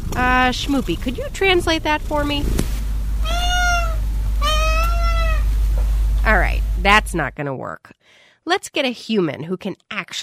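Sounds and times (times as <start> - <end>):
low steady hum: 0.0 - 7.8
speech: 0.2 - 3.4, 6.3 - 10.2
house cat meowing: 3.2 - 5.6.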